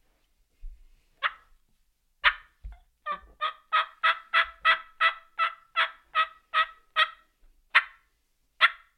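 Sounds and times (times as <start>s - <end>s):
turkey yelps on a turkey call: 1.2s - 1.5s, 2.2s - 8.9s.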